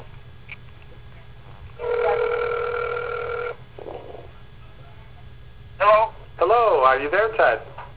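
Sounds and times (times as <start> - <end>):
telephone ringing heard down a call line: 1.8 - 3.6
speech: 7.0 - 7.7.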